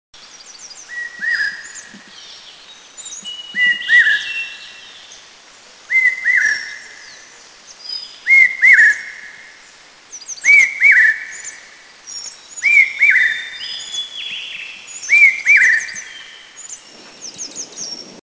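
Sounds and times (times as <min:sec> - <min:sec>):
Large Hawk Cuckoo in Eaglenest, India: 0:00.9 - 0:02.1, 0:03.2 - 0:04.6, 0:05.9 - 0:07.3, 0:08.2 - 0:09.5, 0:10.4 - 0:11.7, 0:12.6 - 0:16.4.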